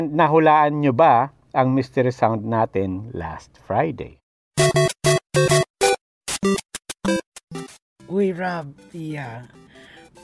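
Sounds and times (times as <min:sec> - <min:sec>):
speech: 0:00.0 - 0:05.6, 0:08.4 - 0:09.6
chiptune melody from a retro platform video game: 0:04.6 - 0:10.2.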